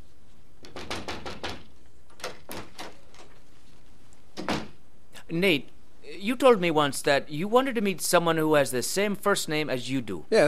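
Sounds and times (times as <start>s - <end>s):
sharp knocks on a door: 0.6s - 1.7s
speech: 5.3s - 10.4s.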